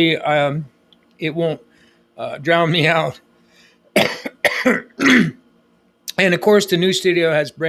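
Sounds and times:
speech: 0:00.0 - 0:03.3, 0:04.0 - 0:05.4, 0:06.2 - 0:07.6
person coughing from new carpet smell in a new studio in Fort Mojave: 0:03.9 - 0:05.5
harsh throat clearing: 0:04.0 - 0:05.4.

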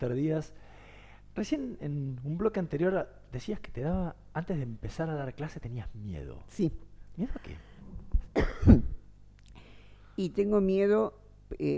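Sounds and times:
speech: 0:00.0 - 0:00.7, 0:01.4 - 0:07.7, 0:10.2 - 0:11.7
rough deep throat clearing: 0:08.2 - 0:09.0
person coughing: 0:08.3 - 0:09.0.

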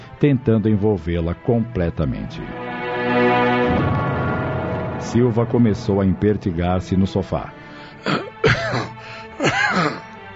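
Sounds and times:
speech: 0:00.2 - 0:04.0, 0:05.0 - 0:08.2
person coughing roughly: 0:08.0 - 0:10.1.

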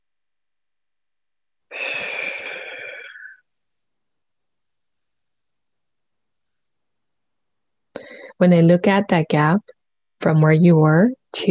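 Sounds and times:
deep breath: 0:01.7 - 0:03.5, 0:08.0 - 0:08.4
speech: 0:08.4 - 0:11.4.

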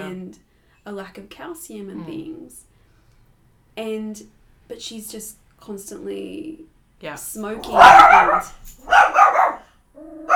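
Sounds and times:
speech: 0:00.3 - 0:02.7, 0:03.8 - 0:09.2
dog barking at a child: 0:07.6 - 0:10.3.

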